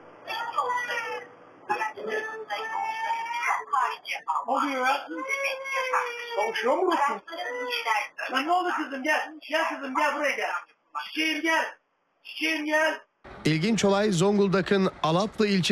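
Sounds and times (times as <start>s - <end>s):
toddler crying and sobbing: 0.3s - 3.9s, 4.6s - 8.5s
speech: 4.1s - 15.7s.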